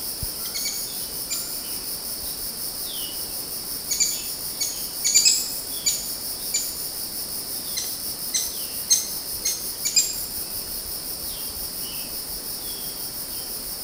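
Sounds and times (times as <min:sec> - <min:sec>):
chorus of crickets on Mount Kinabalu: 0:00.0 - 0:13.8
maroon woodpecker calling on Mount Kinabalu: 0:03.9 - 0:06.7, 0:07.8 - 0:10.2.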